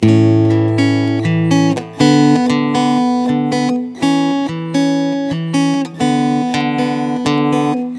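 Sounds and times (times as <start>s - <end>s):
acoustic guitar in A major: 0.0s - 7.9s.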